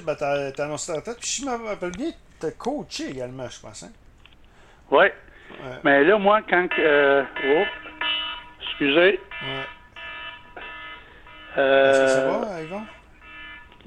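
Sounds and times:
speech: 0.0s - 4.0s, 4.9s - 7.8s, 8.8s - 9.7s, 11.6s - 13.0s
telephone ringing with electronic melodic tones: 5.6s - 13.8s.

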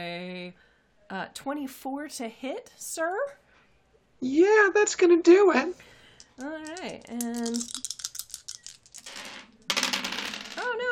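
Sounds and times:
speech: 1.1s - 3.4s, 4.2s - 8.0s
small die rolling and clattering on a hard desk: 6.8s - 10.7s.

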